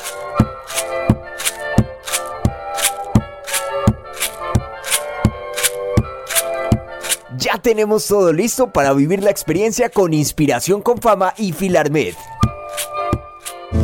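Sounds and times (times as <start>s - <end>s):
homemade maracas filled with seeds shaken in a cumbia rhythm: 0.0s - 7.3s, 12.1s - 13.7s
speech: 7.6s - 12.3s.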